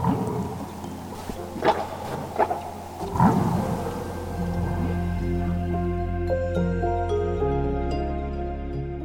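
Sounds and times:
humpback whales calling underwater: 0.0 - 6.1
deep rumbling background: 0.0 - 8.7.

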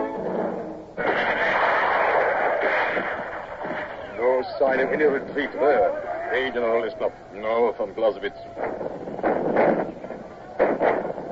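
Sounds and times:
windy rumble: 0.0 - 11.3
enemy cannon fire: 1.0 - 5.6, 8.6 - 11.3
speech: 4.6 - 8.7.

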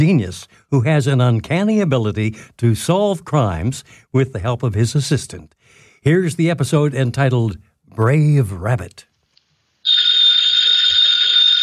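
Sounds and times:
speech: 0.0 - 9.1
old-fashioned telephone bell ringing: 9.9 - 11.6.

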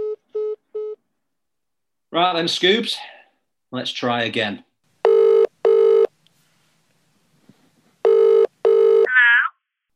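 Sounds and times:
speech: 2.1 - 3.1, 3.7 - 4.7
phone line ringing in British double-burst pattern: 5.0 - 6.1, 8.0 - 9.1.

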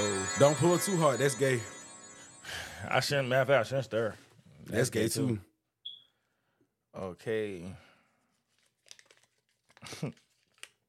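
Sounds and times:
speech: 0.4 - 1.8, 2.4 - 5.5, 6.9 - 7.8, 9.9 - 10.2
folded paper slip crinkling and being unfolded: 8.3 - 10.8.

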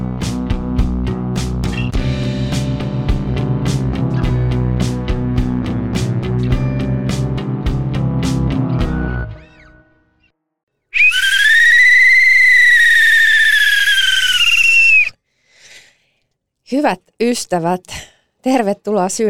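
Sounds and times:
music: 0.0 - 10.6
referee's whistle blowing: 10.9 - 15.2
speech: 16.7 - 19.2.

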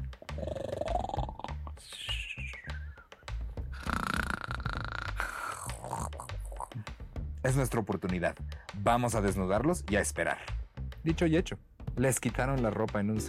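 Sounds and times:
loud rumbling snores of sleeping men: 0.2 - 1.8, 3.6 - 6.9
rising whistling tones on the breaths: 1.8 - 3.2
speech: 7.4 - 13.2.

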